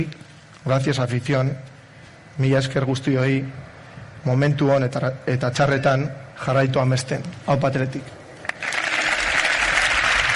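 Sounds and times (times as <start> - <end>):
speech: 0.0 - 1.7, 2.4 - 8.2
crowd applause after a speech at a football club event: 8.4 - 10.3.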